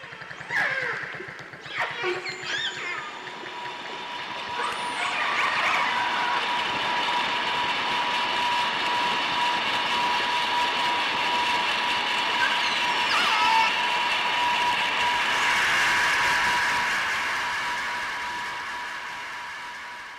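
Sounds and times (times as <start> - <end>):
underwater dolphin whistles and clicks: 0.0 - 6.5, 12.4 - 13.8
underwater drone of a passing boat engine: 0.0 - 20.1.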